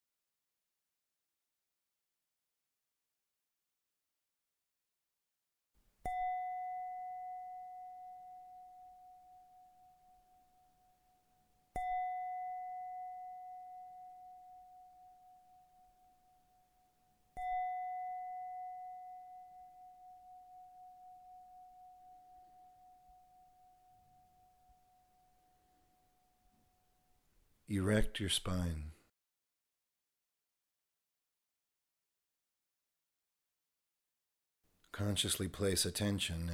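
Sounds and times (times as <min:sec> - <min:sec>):
meditation bell ringing: 0:06.1 - 0:26.4
speech: 0:27.7 - 0:29.0, 0:35.0 - 0:36.5.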